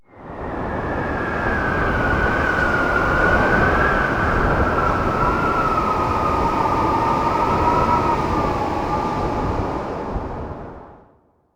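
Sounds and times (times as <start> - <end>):
wind at ruins during an archeology event: 0.0 - 11.3.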